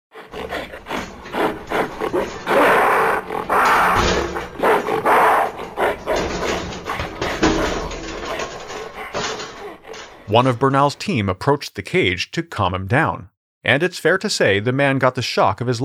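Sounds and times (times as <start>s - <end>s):
gorilla growling and grunting: 0.1s - 10.5s
speech: 10.3s - 15.8s.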